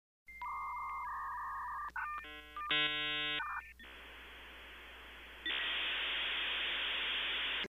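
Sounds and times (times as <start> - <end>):
dial-up modem connecting: 0.3 - 7.6.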